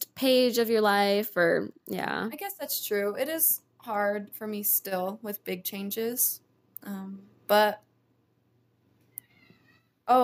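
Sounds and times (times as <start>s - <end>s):
speech: 0.2s - 7.9s, 10.1s - 10.2s
household cat meowing: 9.2s - 9.9s.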